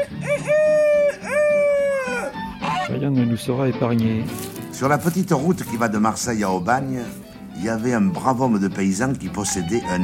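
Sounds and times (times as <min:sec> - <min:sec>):
human voice imitating a rooster crowing: 0:00.0 - 0:02.9
speech: 0:03.0 - 0:10.0.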